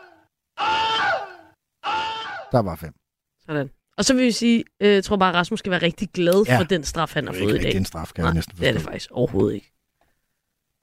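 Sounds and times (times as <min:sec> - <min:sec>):
Wilhelm scream sound effect: 0:00.0 - 0:02.6
speech: 0:02.5 - 0:09.8.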